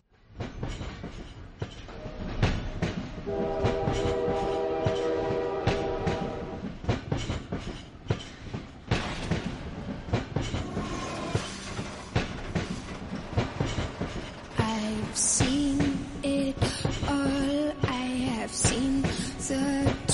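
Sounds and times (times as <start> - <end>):
train rumbling past with wheels clattering on rails: 0.2 - 20.1
sustained train horn blaring: 1.9 - 2.6, 3.2 - 6.7.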